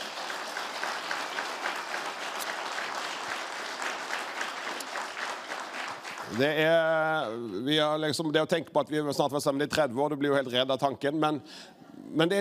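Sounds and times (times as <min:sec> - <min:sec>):
audience applauding a speaker: 0:00.0 - 0:06.8
speech: 0:06.3 - 0:12.3.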